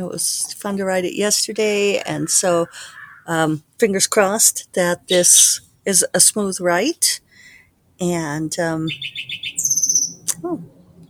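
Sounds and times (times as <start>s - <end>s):
speech: 0.0s - 7.3s, 8.0s - 9.6s, 10.4s - 10.7s
unidentified bird calling: 1.7s - 3.6s, 8.8s - 11.0s.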